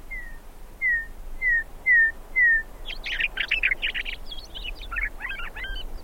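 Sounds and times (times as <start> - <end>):
faint hiss: 0.0 - 6.0
meadowlark singing outdoors: 0.1 - 6.0.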